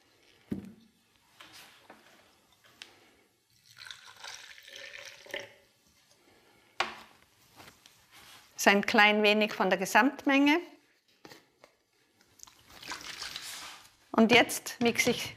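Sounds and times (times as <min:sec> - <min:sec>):
water pouring into a container: 0:03.5 - 0:05.7, 0:12.4 - 0:13.9
speech: 0:08.6 - 0:10.7, 0:14.2 - 0:15.3.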